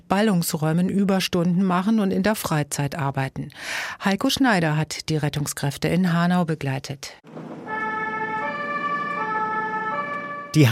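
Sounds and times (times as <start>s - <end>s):
speech: 0.1s - 7.2s
ambulance siren from a rescue vehicle speeding through a German city centre: 7.3s - 10.7s.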